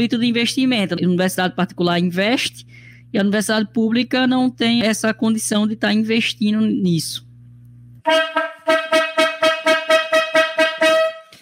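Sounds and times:
speech: 0.0 - 7.2, 8.0 - 8.5
loud brassy horn honking in short pulsing blasts: 8.0 - 11.4.

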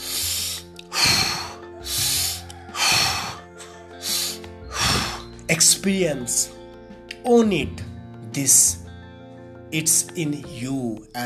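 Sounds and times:
deep breathing during a guided meditation: 0.0 - 5.5
speech: 5.5 - 6.6, 7.2 - 8.8, 9.7 - 11.2.

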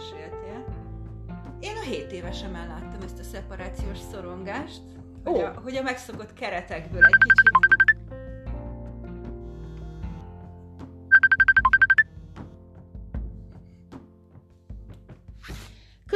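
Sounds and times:
low music: 0.0 - 16.1
speech: 1.8 - 7.7
mobile phone ringing with a bright electronic trill: 7.0 - 8.0, 11.1 - 12.0.

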